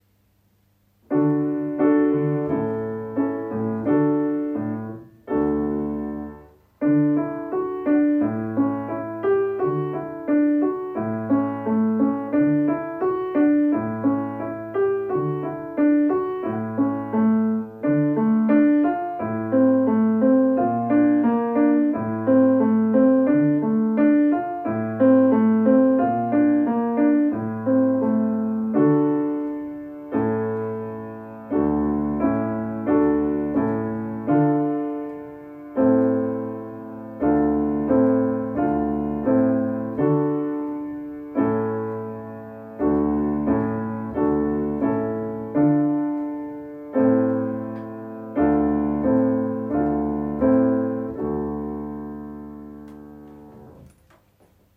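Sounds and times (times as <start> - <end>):
piano: 0.0 - 54.7.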